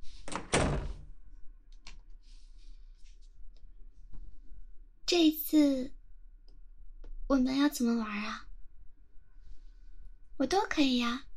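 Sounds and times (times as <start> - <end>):
door pulled open with clunk and rattle: 0.3 - 1.0
shuffling sounds: 2.1 - 4.3
speech: 5.1 - 6.0, 7.3 - 8.4, 10.4 - 11.3.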